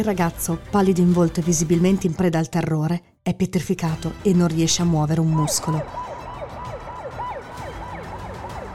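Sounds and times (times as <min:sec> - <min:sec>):
speech: 0:00.0 - 0:06.1
police car siren yelping: 0:05.3 - 0:08.7.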